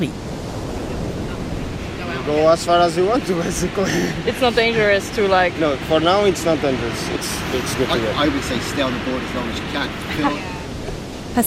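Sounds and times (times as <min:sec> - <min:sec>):
speech: 0:00.0 - 0:00.2, 0:02.3 - 0:10.5
ocean waves surging in the surf: 0:00.0 - 0:11.4
gusty wind buffeting the microphone: 0:00.1 - 0:11.4
laughter: 0:03.1 - 0:05.1, 0:07.4 - 0:10.7.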